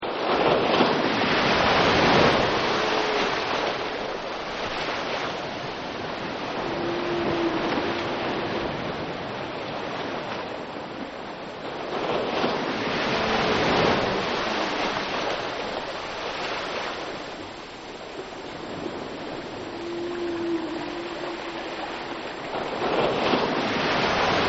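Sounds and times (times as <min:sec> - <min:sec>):
surf: 0:00.0 - 0:24.4
whales: 0:00.0 - 0:24.4.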